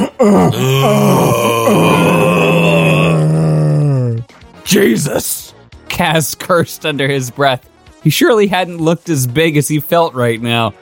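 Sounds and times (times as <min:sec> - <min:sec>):
man groaning in pain: 0:00.0 - 0:04.3
speech: 0:00.2 - 0:02.3, 0:04.7 - 0:05.4, 0:06.0 - 0:10.8.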